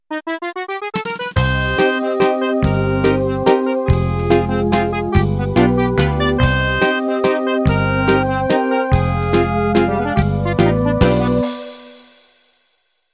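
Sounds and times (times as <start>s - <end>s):
musette music intro: 0.1s - 12.5s.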